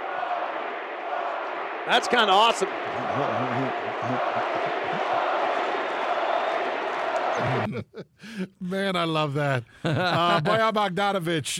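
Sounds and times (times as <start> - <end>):
large arena crowd chanting at a basketball game: 0.0 - 7.7
speech: 1.8 - 5.4, 7.4 - 11.5
laughter: 2.9 - 5.4, 7.4 - 8.2, 9.8 - 10.8.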